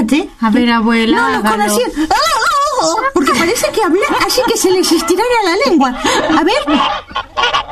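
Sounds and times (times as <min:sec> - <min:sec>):
speech: 0:00.1 - 0:07.6
laughter: 0:03.0 - 0:06.9
turkey gobbling: 0:04.0 - 0:07.6.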